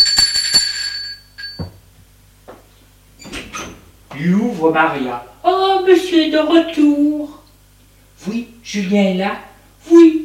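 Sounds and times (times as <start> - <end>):
bright metallic doorbell ringing: 0.0 - 1.8
speech: 4.2 - 7.3, 8.2 - 10.1.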